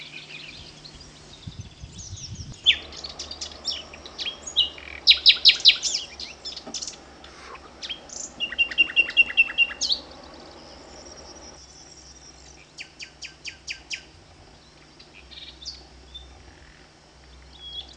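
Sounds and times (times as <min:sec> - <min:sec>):
oboe playing hoopoe birdsong: 0:02.5 - 0:11.5.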